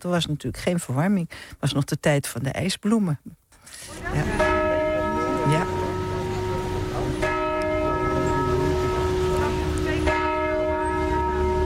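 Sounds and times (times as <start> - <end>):
speech: 0.0 - 4.6
church bells ringing: 4.0 - 11.6.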